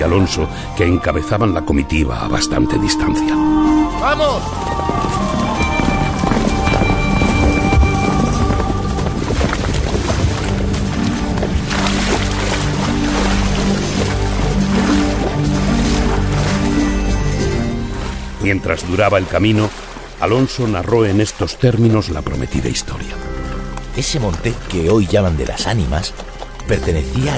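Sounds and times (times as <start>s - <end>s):
speech: 0.0s - 5.4s, 18.4s - 23.4s, 24.0s - 27.3s
blustery rumble of wind: 2.3s - 20.2s
horse hooves clip-clopping in a procession: 4.2s - 18.4s, 19.6s - 27.3s.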